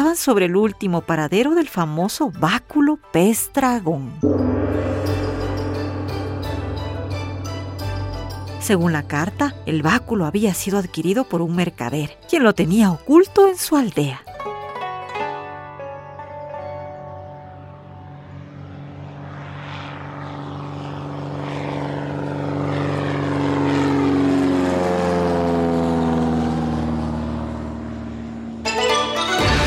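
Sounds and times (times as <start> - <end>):
speech: 0.1 - 5.0, 8.7 - 14.3
light propeller plane engine droning: 4.2 - 11.1, 16.6 - 29.5.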